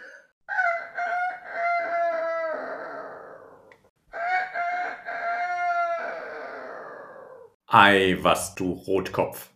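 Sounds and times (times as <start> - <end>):
rooster crowing loudly: 0.5 - 7.6
speech: 7.7 - 9.5.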